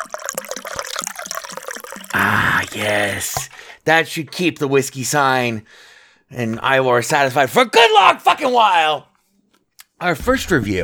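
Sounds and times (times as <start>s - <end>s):
liquid pouring quickly from a bottle: 0.0s - 3.7s
speech: 2.8s - 9.1s, 10.0s - 10.8s.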